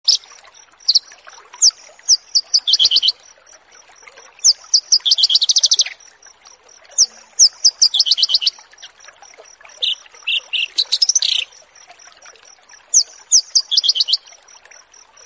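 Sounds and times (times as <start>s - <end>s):
Australasian bush lark song with sharp chirps and rattling trills: 0.0s - 3.3s, 4.4s - 6.2s, 6.9s - 9.0s, 9.8s - 11.6s, 12.9s - 14.3s.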